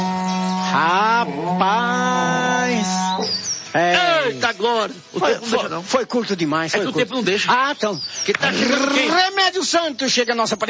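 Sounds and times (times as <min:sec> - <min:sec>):
berrante cattle horn blown: 0:00.0 - 0:04.5
speech: 0:00.7 - 0:10.6.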